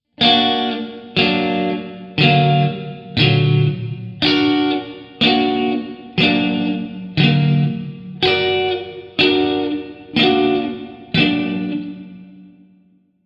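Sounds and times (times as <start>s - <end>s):
augmented triad chord progression: 0.2s - 12.6s.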